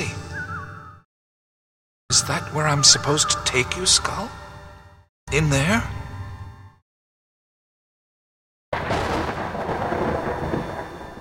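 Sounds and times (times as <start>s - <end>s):
speech: 2.2s - 4.4s, 5.3s - 6.0s
thunder rumbling from an approaching storm: 8.8s - 11.1s.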